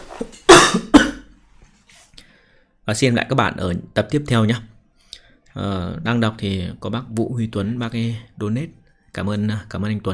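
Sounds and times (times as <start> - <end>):
person with a persistent cough coughing harshly: 0.3 - 1.4
speech: 2.9 - 4.7, 5.6 - 10.1.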